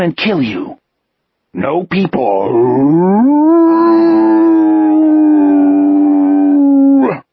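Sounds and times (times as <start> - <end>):
speech: 0.0 - 0.8, 1.5 - 5.8
wolf howling: 2.6 - 7.2.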